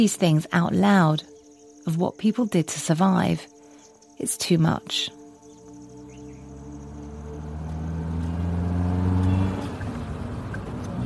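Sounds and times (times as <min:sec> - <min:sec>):
speech: 0:00.0 - 0:03.5, 0:04.2 - 0:05.2
car engine drone while driving south toward the Sundarban jungle: 0:05.3 - 0:11.0.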